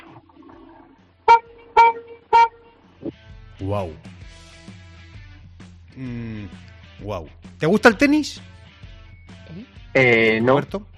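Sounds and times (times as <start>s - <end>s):
car horn toots: 1.2s - 2.8s
speech: 3.6s - 4.4s, 6.0s - 8.5s, 9.6s - 10.9s.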